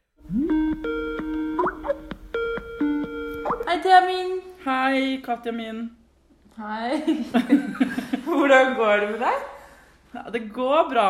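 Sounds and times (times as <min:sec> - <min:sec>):
Skype call ringtone: 0:00.4 - 0:03.7
speech: 0:03.7 - 0:06.0, 0:06.6 - 0:09.5, 0:10.1 - 0:11.0
laughter: 0:06.9 - 0:08.5.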